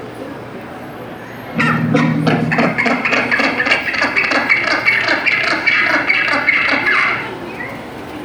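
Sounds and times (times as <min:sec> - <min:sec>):
southern rockhopper penguin calling: 0:01.5 - 0:08.0.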